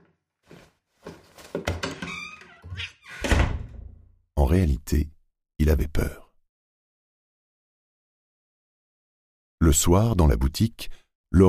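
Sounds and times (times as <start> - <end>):
soft bumps and shuffling movements: 0.5 - 1.9
door swinging shut with a heavy thunk: 1.5 - 4.0
speech: 4.5 - 6.2, 9.6 - 11.4.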